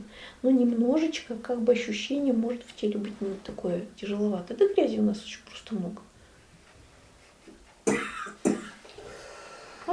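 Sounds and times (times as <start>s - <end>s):
speech: 0.2s - 6.1s
person coughing: 7.8s - 8.9s.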